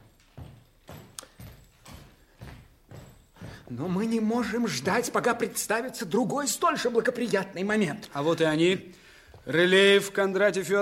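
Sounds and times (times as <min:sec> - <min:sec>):
heavy footsteps approaching at a walking pace: 0:00.0 - 0:05.5, 0:09.1 - 0:09.6
speech: 0:03.7 - 0:10.8.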